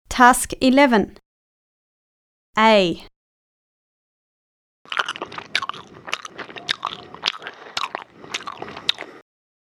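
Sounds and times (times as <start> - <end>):
speech: 0.2 - 1.2, 2.6 - 3.1
gum being chewed: 4.9 - 9.3.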